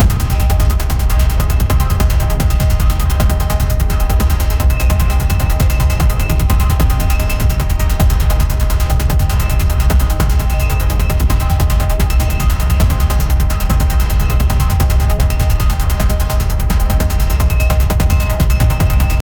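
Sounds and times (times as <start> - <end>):
fast-paced thumping pad loop: 0.0 - 19.2.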